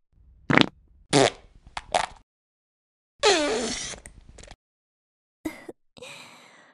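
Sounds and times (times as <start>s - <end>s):
string of farts with squeaky drawn-out fart: 0.5s - 1.4s, 3.2s - 4.1s.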